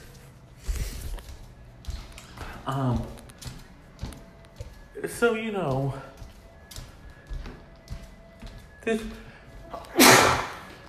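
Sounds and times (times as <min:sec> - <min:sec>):
speech: 0:02.7 - 0:03.2, 0:05.0 - 0:06.1, 0:08.8 - 0:09.2
sneeze: 0:09.9 - 0:10.7.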